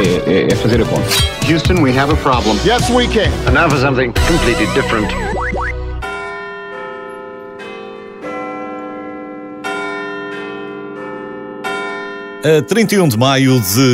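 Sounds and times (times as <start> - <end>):
speech: 0.5 - 5.3, 12.4 - 13.9
clock tower bell at the Palace of Westminster chiming: 6.0 - 13.9.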